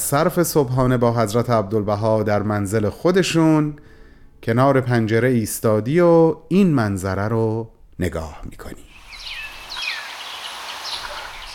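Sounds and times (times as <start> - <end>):
speech: 0.1 - 9.4
steady outdoor hiss: 8.8 - 11.5
small sparrows chirping: 8.9 - 11.5.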